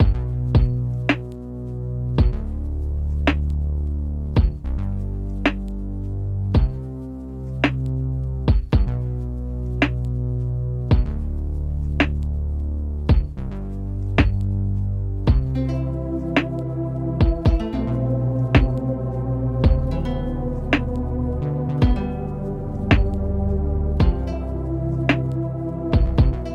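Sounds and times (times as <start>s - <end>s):
music loop: 0.0s - 5.8s, 6.5s - 7.0s, 7.6s - 26.5s.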